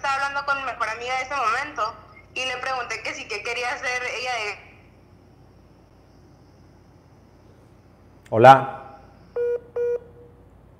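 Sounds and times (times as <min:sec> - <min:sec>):
faint hiss: 0:00.0 - 0:10.7
speech: 0:00.4 - 0:04.7, 0:08.3 - 0:08.8
electronic beep tones as an internet call reconnects: 0:09.4 - 0:10.2.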